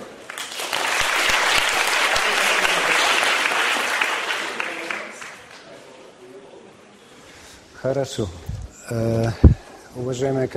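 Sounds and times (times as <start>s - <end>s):
audience applause welcoming a lecturer at a medical faculty: 0.0s - 5.7s
speech: 7.8s - 10.5s.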